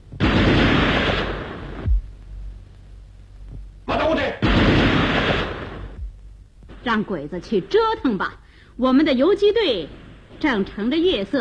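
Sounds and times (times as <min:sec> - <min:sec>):
gunshot in a radio drama: 0:00.2 - 0:02.0, 0:04.4 - 0:06.1
speech: 0:06.8 - 0:11.3.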